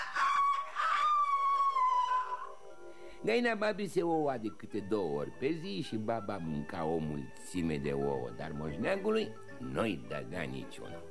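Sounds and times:
rooster crowing: 0:00.0 - 0:02.7
speech: 0:03.2 - 0:11.0.

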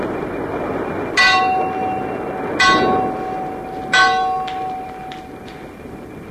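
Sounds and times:
constant low rumble: 0:00.0 - 0:06.2
large ship's mast bell ringing in fog: 0:01.2 - 0:05.8.

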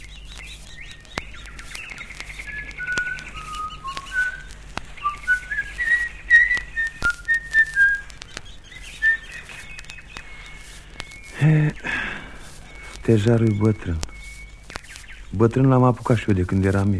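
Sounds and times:
person whistling a wandering melodic tune: 0:02.8 - 0:08.1, 0:09.0 - 0:09.4
speech: 0:13.1 - 0:14.1, 0:15.4 - 0:16.9.

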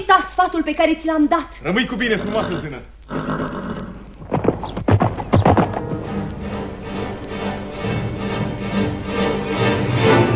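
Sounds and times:
speech: 0:00.0 - 0:03.2
horse with a rider galloping away: 0:01.7 - 0:10.2
horse whinnying: 0:02.0 - 0:06.2.

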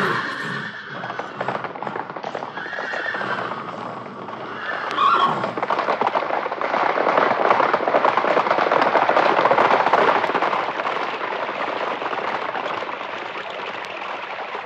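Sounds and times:
horse whinny: 0:00.0 - 0:05.7
horses trotting at a brisk extended trot: 0:00.0 - 0:14.6.

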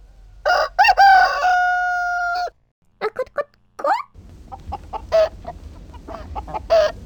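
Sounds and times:
faint noise: 0:00.0 - 0:07.0
rooster crowing: 0:00.4 - 0:02.6, 0:06.1 - 0:07.0
hen clucking: 0:03.0 - 0:07.0.

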